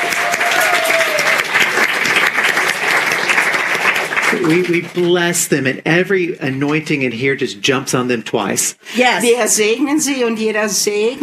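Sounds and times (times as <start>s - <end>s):
audience applause in an overflow room: 0.0s - 5.6s
speech: 4.4s - 11.2s.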